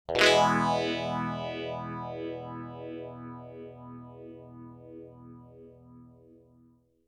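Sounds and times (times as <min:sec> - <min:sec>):
guitar strum: 0:00.1 - 0:04.8.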